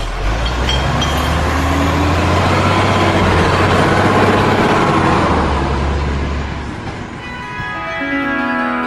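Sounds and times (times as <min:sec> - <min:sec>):
delivery truck engine rumbling: 0:00.0 - 0:08.7.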